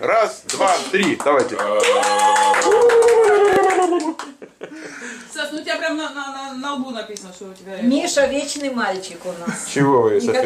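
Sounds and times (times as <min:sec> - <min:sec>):
speech: 0:00.0 - 0:03.0, 0:05.4 - 0:10.4
group clapping hands in a steady rhythm: 0:00.4 - 0:04.4
laughter: 0:02.8 - 0:05.2.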